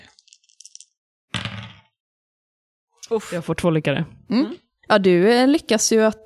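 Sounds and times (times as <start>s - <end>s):
dice shaken in a hand: 0.1s - 0.9s
three dice tumbling onto a table: 0.2s - 1.9s
speech: 3.1s - 6.2s.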